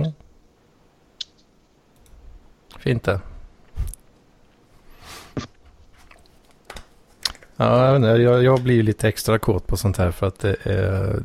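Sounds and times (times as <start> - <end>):
computer mouse click pressing a download button: 1.2 - 2.2
speech: 2.8 - 3.3, 7.6 - 11.2.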